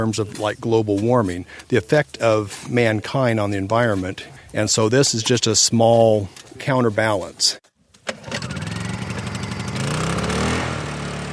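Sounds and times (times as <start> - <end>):
speech: 0.0 - 7.6
motor of a generator or power tool sputtering to life and revving: 8.2 - 11.3.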